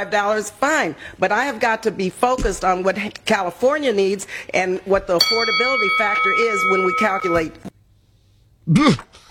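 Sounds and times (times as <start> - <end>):
speech: 0.0 - 7.7, 8.7 - 9.2
bell ringing with quick metallic strikes: 5.2 - 7.6.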